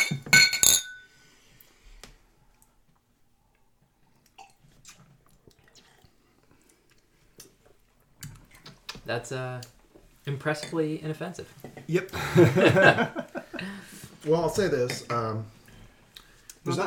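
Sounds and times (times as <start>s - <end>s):
quiet handling of whiskey glasses: 0.0s - 1.1s
whiskey glasses clinking in a toast: 0.0s - 1.1s
faint sipping: 3.5s - 7.8s
speech: 9.1s - 15.6s, 16.6s - 16.8s
laughter: 12.1s - 13.8s.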